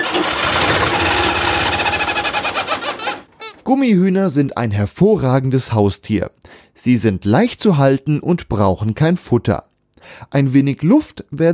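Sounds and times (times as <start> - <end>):
1970s tractor engine running through exhaust pipe: 0.0 - 3.6
speech: 3.7 - 11.5.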